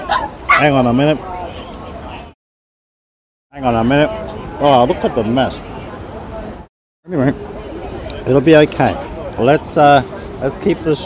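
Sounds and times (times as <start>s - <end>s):
puppy barking with a whiny tone: 0.0s - 0.8s
quiet murmur: 0.0s - 2.4s, 3.5s - 11.0s
speech: 0.6s - 1.3s, 3.6s - 5.7s, 7.0s - 7.6s, 8.2s - 11.0s.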